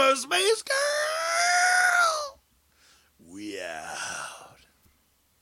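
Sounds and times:
speech: 0:00.1 - 0:00.7
person screaming: 0:00.8 - 0:02.4, 0:03.3 - 0:04.6.

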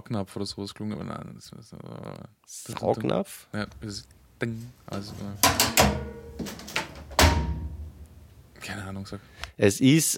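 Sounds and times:
speech: 0:00.1 - 0:06.7, 0:08.6 - 0:10.1
metal drum doors of a top-loading washing machine clicking shut: 0:04.9 - 0:08.3
top-loading washing machine lid slam with deep thud: 0:05.4 - 0:08.1.

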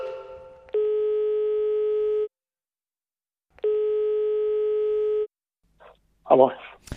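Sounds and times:
phone dialing tones: 0:00.7 - 0:02.3, 0:03.6 - 0:05.3
speech: 0:06.4 - 0:06.9.

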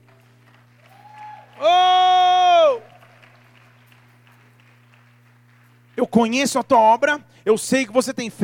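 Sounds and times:
congregation applauding: 0:00.0 - 0:06.7
low electrical hum: 0:00.0 - 0:08.4
speech: 0:06.0 - 0:08.4.

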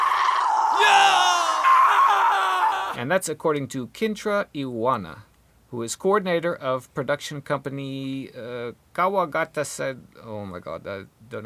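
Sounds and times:
person screaming high-pitched and strained: 0:00.0 - 0:03.0
speech: 0:03.0 - 0:11.4.

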